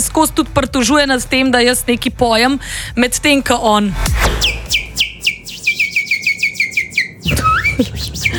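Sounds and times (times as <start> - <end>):
speech: 0.2 - 4.8
man whistling bird-like warble: 4.4 - 8.3.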